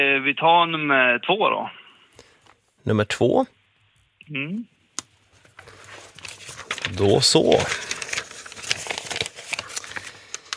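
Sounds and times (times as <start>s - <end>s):
speech: 0.0s - 1.8s, 2.8s - 3.6s, 4.3s - 4.7s, 6.9s - 7.9s
paper pages flipping in a binder of quiz questions: 5.0s - 10.5s.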